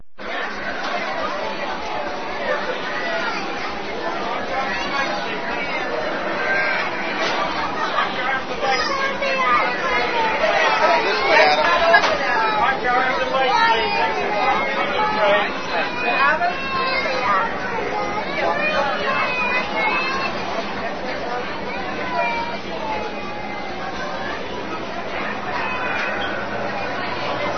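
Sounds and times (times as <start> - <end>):
kids at a party: 0.2 - 27.5.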